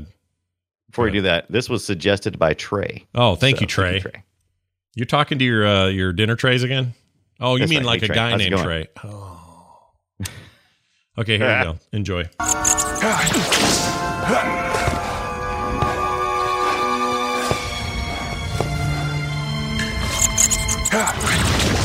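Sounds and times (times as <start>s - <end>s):
speech: 1.0s - 4.3s, 5.0s - 9.4s, 10.2s - 10.4s, 11.2s - 14.9s
orchestral music: 12.4s - 21.7s
sharp whip crack: 13.3s - 14.0s.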